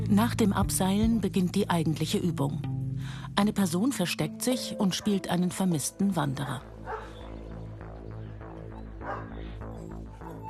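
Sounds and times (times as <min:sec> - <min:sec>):
speech: 0:00.1 - 0:06.7
search dog barking excitedly: 0:06.8 - 0:07.5, 0:09.0 - 0:09.5.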